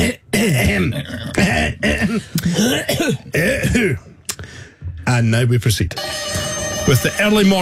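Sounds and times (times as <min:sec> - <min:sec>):
person clearing throat: 0:00.0 - 0:04.1
speech: 0:00.1 - 0:04.0, 0:05.1 - 0:07.6.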